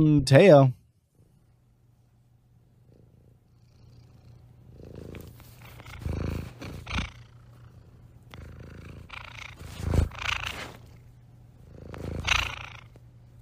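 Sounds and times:
speech: 0.0 - 0.8
cat purring: 2.5 - 13.4.

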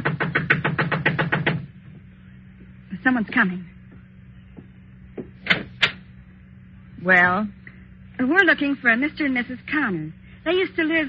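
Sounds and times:
knocking on a door: 0.0 - 1.7, 4.6 - 6.0
speech: 3.0 - 3.8, 7.0 - 7.6, 8.2 - 11.0.

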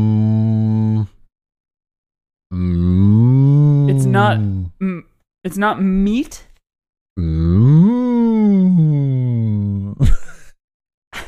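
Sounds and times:
person imitating a cow mooing: 0.0 - 1.3, 2.5 - 5.1, 7.2 - 10.0
speech: 4.1 - 6.5, 7.2 - 7.8.

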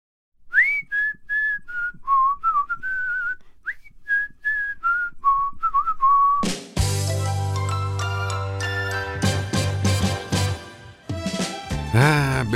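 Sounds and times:
whistled TV theme tune: 0.5 - 11.9
full instrumental arrangement with bass and bright chimes: 6.8 - 10.7.

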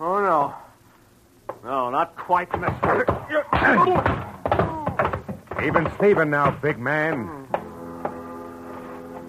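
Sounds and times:
speech: 0.0 - 0.6, 1.9 - 4.3, 5.6 - 7.4
blunt thwacks of punches to the jaw: 2.5 - 7.7
strained grunts from people fighting: 3.3 - 5.3.

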